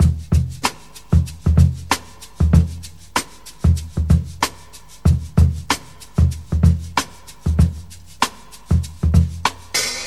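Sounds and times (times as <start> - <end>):
95 bpm modern breakbeat in E: 0.0 - 10.0.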